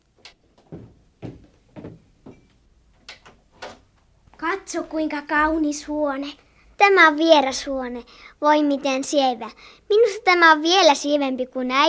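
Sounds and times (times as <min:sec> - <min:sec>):
door opening with knocks and clunks: 0:00.2 - 0:04.1
speech: 0:04.7 - 0:11.8.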